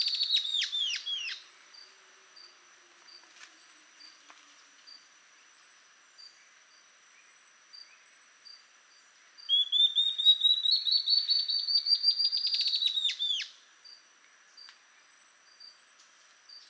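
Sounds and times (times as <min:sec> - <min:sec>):
ocellated antbird subspecies mcleannani singing: 0:00.0 - 0:01.9, 0:09.3 - 0:13.6.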